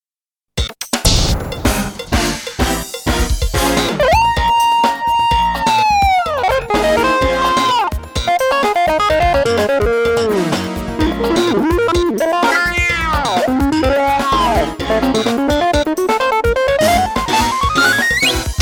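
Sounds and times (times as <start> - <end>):
general music: 0.6 - 18.5.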